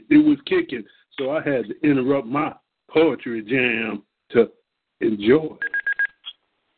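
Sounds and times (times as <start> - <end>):
speech: 0.1 - 5.8
phone keypad tones: 5.6 - 6.3.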